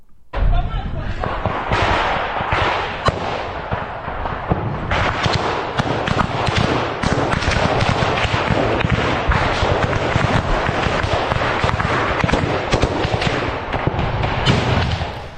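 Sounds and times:
dense gunfire in real war footage: 0:00.0 - 0:15.3.

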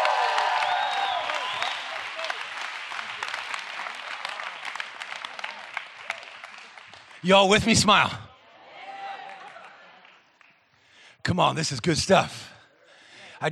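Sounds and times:
crowd whooping and shouting: 0:00.0 - 0:02.3, 0:08.6 - 0:09.7
crowd applauding: 0:00.0 - 0:08.2, 0:08.8 - 0:10.6
speech: 0:07.2 - 0:08.2, 0:11.4 - 0:12.6.

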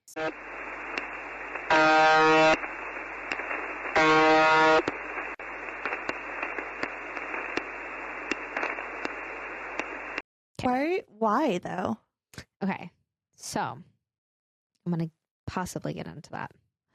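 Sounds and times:
speech: 0:00.2 - 0:00.6, 0:11.2 - 0:12.0, 0:12.6 - 0:13.9, 0:14.8 - 0:16.9
clicks: 0:00.2 - 0:10.2
steady hum: 0:00.2 - 0:10.2
harmonic buzzing alarm tones: 0:01.6 - 0:05.4.

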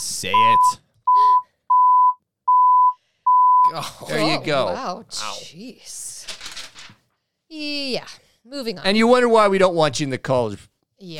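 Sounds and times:
speech: 0:00.0 - 0:00.8, 0:03.7 - 0:06.1, 0:07.5 - 0:11.1
censor bleep tone: 0:00.0 - 0:03.7.

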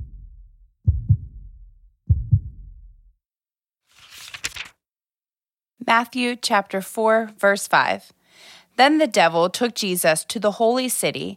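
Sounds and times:
slow gentle heartbeat: 0:00.0 - 0:03.1
speech: 0:05.8 - 0:11.3.

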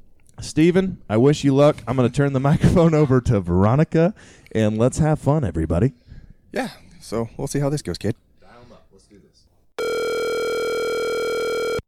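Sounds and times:
speech: 0:00.4 - 0:08.2
telephone dial tone while placing a call: 0:09.8 - 0:11.8.

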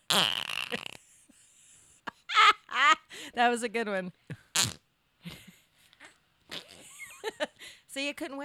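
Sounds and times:
speech: 0:00.1 - 0:00.8, 0:03.4 - 0:04.8, 0:08.0 - 0:08.4
comedic fart sound effect: 0:00.1 - 0:01.0.

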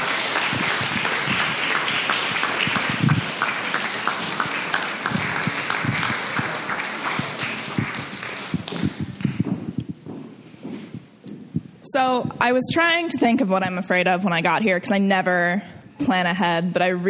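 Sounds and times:
audience clapping for a performer: 0:00.0 - 0:09.8
speech: 0:12.0 - 0:17.0.

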